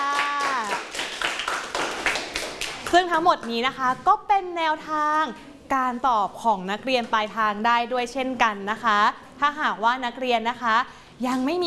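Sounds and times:
class clapping for a classmate in a school lesson: 0:00.0 - 0:03.0
speech: 0:02.9 - 0:11.6.

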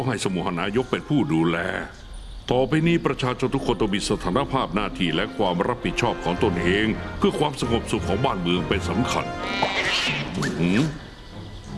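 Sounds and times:
speech: 0:00.0 - 0:11.0
steady hissy background: 0:00.0 - 0:11.7
single drawn-out cat meow: 0:09.4 - 0:10.4.

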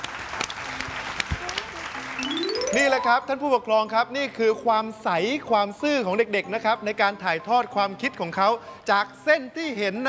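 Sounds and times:
children applauding during a drawing class: 0:00.0 - 0:03.2
speech: 0:02.7 - 0:10.0.

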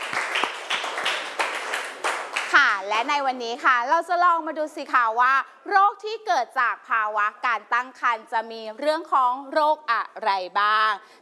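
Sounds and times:
classroom of students clapping: 0:00.0 - 0:02.7
speech: 0:02.8 - 0:11.1.

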